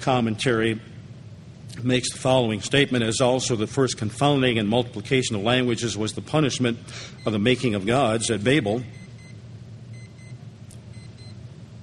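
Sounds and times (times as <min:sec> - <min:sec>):
speech: 0:00.0 - 0:00.9, 0:01.7 - 0:09.0
steady low rumble: 0:00.0 - 0:11.8
alarm clock beeping: 0:11.0 - 0:11.4.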